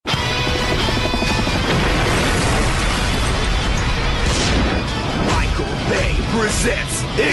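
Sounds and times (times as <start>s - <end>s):
explosion sound effects with deep rumbling blasts: 0.4s - 6.8s
crackling debris: 0.5s - 6.1s
speech: 6.6s - 7.3s.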